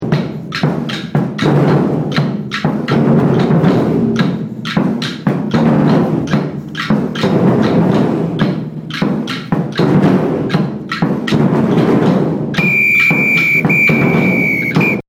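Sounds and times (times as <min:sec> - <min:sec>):
surdo drum playing a break: 0:00.0 - 0:15.0
agogo bells playing a break: 0:12.6 - 0:15.0.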